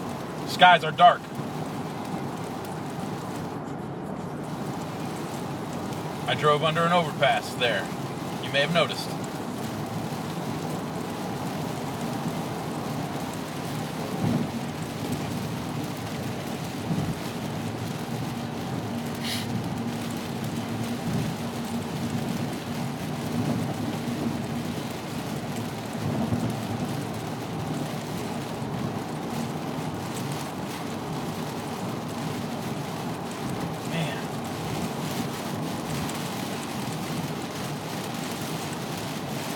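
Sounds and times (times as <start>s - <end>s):
heavy rain: 0.0s - 39.5s
speech: 0.5s - 1.3s, 6.3s - 9.2s.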